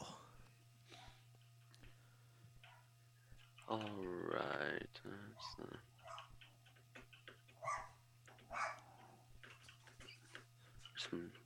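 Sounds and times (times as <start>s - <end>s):
steady low electrical hum: 0.0s - 11.4s
speech: 3.7s - 6.2s, 11.1s - 11.4s
dog barking: 5.4s - 6.5s, 7.6s - 9.2s.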